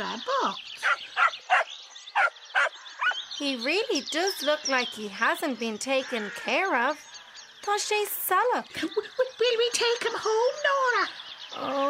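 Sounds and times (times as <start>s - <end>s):
lost neglected-looking dog barking: 0.8s - 3.2s
speech: 3.4s - 11.8s.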